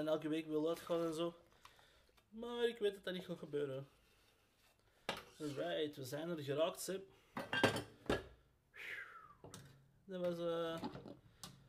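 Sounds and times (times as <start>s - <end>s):
speech: 0.0s - 1.5s, 2.3s - 4.0s, 5.4s - 7.9s, 9.4s - 11.2s
dishes clinking and clattering while being washed up: 7.4s - 8.3s.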